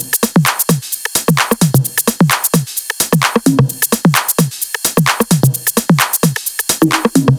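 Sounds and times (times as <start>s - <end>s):
130 BPM drum kit: 0.0s - 7.3s.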